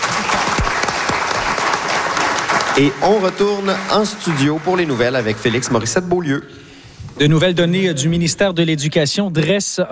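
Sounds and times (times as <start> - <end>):
studio audience applause for guests: 0.0 - 6.3
speech: 2.8 - 6.6, 7.2 - 9.9.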